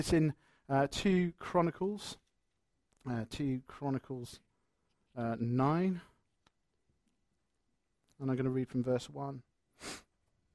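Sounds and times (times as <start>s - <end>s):
speech: 0.0s - 2.2s, 3.0s - 4.4s, 5.2s - 6.1s, 8.2s - 10.0s
quick breathy sniff: 9.7s - 10.2s.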